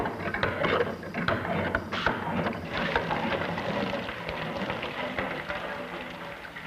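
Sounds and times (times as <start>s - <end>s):
water pump mechanical clanks and creaks: 0.0s - 4.4s
water gushing and splashing from a working water pump: 2.6s - 6.6s.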